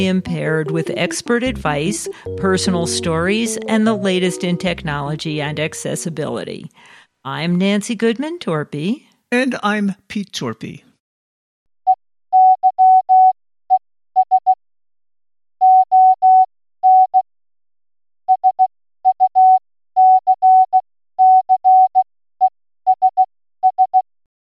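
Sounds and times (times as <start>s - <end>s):
speech: 0.0s - 10.8s
morse code beeps in a steady mid-pitched tone: 0.6s - 5.8s, 12.4s - 13.4s, 15.6s - 17.2s, 18.3s - 22.0s, 22.9s - 24.0s.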